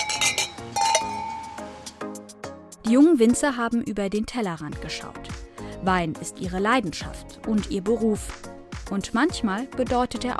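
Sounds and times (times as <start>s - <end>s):
wine glasses clinking in a toast: 0.0s - 1.9s
speech: 2.9s - 10.3s.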